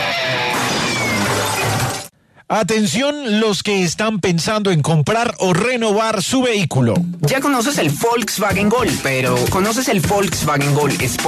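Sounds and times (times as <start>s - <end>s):
old guitar being smashed: 0.0s - 2.1s
speech: 2.5s - 11.2s.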